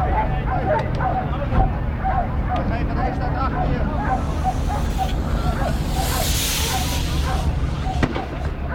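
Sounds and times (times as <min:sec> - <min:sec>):
outdoor crowd noise and voices: 0:00.0 - 0:08.7
hissing burst of tear gas canisters being fired: 0:03.9 - 0:08.5.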